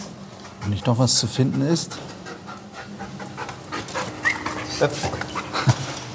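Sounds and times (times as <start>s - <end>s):
speech: 0.6s - 2.3s, 4.8s - 5.4s
sniffer dog panting while searching a prison cell: 0.6s - 6.0s
sniffer dog whimpering faintly: 3.9s - 5.8s.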